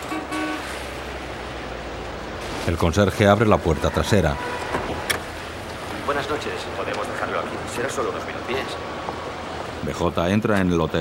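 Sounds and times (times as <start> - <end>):
short car horn toots: 0.0 - 0.8
low steady traffic rumble: 0.0 - 11.0
speech: 2.6 - 4.6, 6.3 - 9.1, 9.8 - 11.0.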